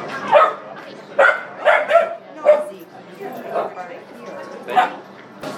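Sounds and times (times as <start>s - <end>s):
puppy yipping and barking: 0.3s - 0.7s, 1.2s - 2.7s, 4.7s - 5.0s.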